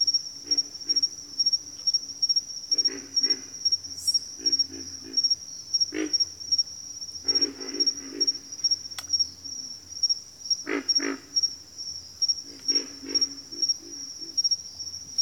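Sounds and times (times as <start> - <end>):
high pulsing insect drone: 0.0 - 15.2
pig frogs giving deep coarse grunts in a bayou: 0.4 - 1.7, 2.7 - 6.6, 7.2 - 8.8, 10.6 - 11.6, 12.4 - 14.6.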